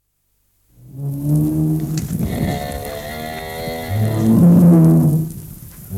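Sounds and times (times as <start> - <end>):
bull bellowing: 1.0 - 5.2.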